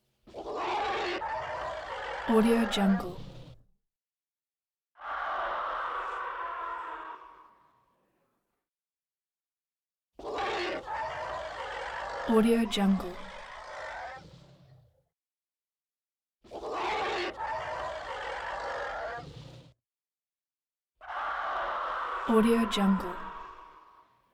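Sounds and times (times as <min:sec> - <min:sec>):
reverberant growly animal screeches: 0:00.3 - 0:03.6, 0:05.0 - 0:07.7, 0:10.2 - 0:15.0, 0:16.5 - 0:19.8, 0:21.0 - 0:24.2.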